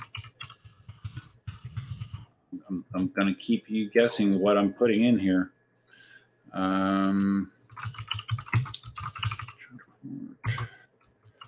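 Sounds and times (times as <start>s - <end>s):
typing on a computer keyboard: 0.0s - 2.2s, 7.7s - 9.6s
speech: 2.6s - 5.6s, 6.5s - 7.9s.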